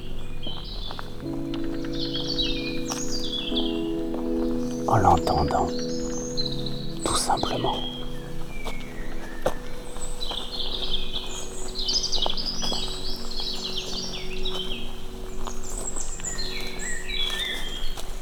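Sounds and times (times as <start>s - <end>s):
several birds singing and chirping at dusk: 0.0s - 18.1s
soft rustling steps: 0.0s - 18.1s
speech: 4.9s - 5.9s, 7.4s - 7.9s.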